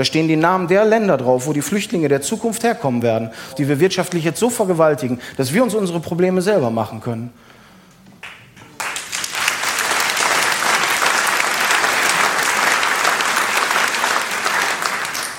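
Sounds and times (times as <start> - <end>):
speech: 0.0 - 7.5
crowd applauding: 8.2 - 15.3.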